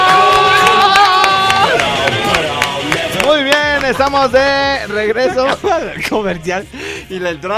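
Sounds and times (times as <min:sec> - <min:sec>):
crowd cheering and whooping: 0:00.0 - 0:03.9
scattered claps of a crowd: 0:00.0 - 0:04.2
speech: 0:04.0 - 0:07.5
laughter: 0:05.0 - 0:06.4.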